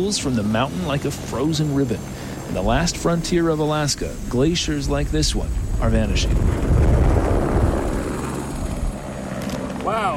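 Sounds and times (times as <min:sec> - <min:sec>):
speech: 0:00.0 - 0:06.8
helicopter flying overhead: 0:00.0 - 0:10.1.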